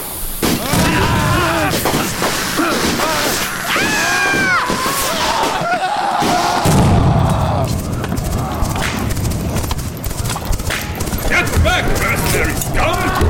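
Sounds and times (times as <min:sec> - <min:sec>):
rising firework whistles: 0:00.0 - 0:07.1
fireworks exploding with booms and crackling bursts: 0:00.0 - 0:13.2
laughter: 0:00.6 - 0:09.2, 0:11.2 - 0:13.2.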